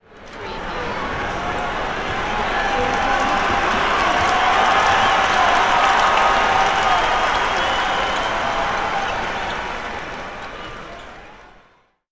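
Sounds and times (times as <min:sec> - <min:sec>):
basketball crowd cheering: 0:00.4 - 0:12.0.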